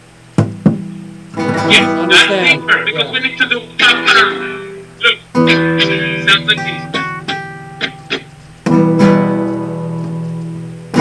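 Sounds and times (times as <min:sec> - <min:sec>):
hand striking the body of an acoustic guitar, flamenco-style golpe tap: 0:00.4 - 0:01.7
ringing acoustic guitar string tones: 0:00.8 - 0:11.0
speech: 0:01.6 - 0:07.0.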